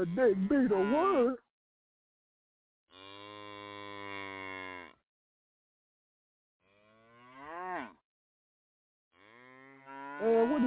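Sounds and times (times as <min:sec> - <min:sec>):
speech: 0:00.0 - 0:01.4
cow mooing: 0:02.9 - 0:05.0, 0:06.6 - 0:08.0, 0:09.2 - 0:10.6.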